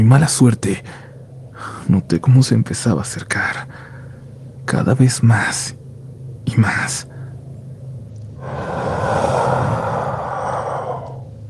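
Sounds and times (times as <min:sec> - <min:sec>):
speech: 0:00.0 - 0:03.8, 0:04.7 - 0:05.8, 0:06.5 - 0:07.1
eerie creature breathing, hoarse and rasping with a growly undertone: 0:08.4 - 0:11.4.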